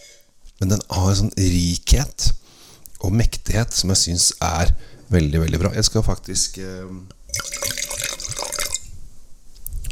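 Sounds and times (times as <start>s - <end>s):
speech: 0.6s - 2.4s, 3.0s - 7.2s
2018 Gustav Lorentz wine pouring into a glass: 7.3s - 8.9s.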